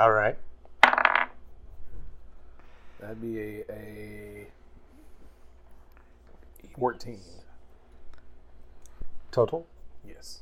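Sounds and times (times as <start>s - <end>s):
speech: 0.0s - 0.5s, 3.0s - 4.6s, 6.8s - 7.4s, 9.3s - 10.4s
dice clattering across a tabletop: 0.8s - 1.4s.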